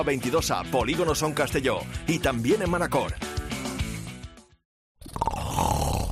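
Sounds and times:
speech: 0:00.0 - 0:03.3
person snoring: 0:05.0 - 0:06.1.

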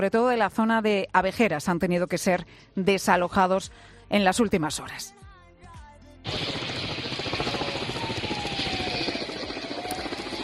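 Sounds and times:
speech: 0:00.0 - 0:05.2, 0:06.2 - 0:06.6
firefighting helicopter rotor chop overhead: 0:06.3 - 0:10.4.

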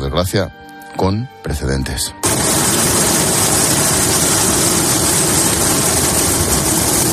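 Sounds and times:
speech: 0:00.2 - 0:02.5
helicopter engine and rotor roaring overhead: 0:02.3 - 0:07.1.

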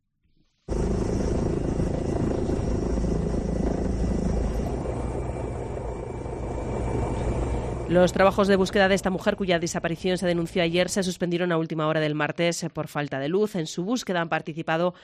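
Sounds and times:
Guardia Civil helicopter searching area near Ventrosa Spain for a missing woman: 0:00.7 - 0:11.1
speech: 0:07.9 - 0:15.0.

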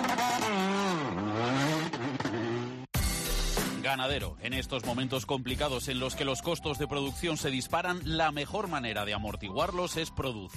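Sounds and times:
rally car engine revving on a rally stage: 0:00.0 - 0:02.9
speech: 0:03.9 - 0:10.5.

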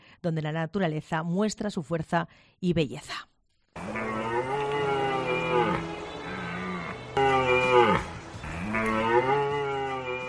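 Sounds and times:
speech: 0:00.2 - 0:03.3
deer stags bellowing during the autumn rut in the mountains of Sierra de Cebollera: 0:03.8 - 0:10.2.

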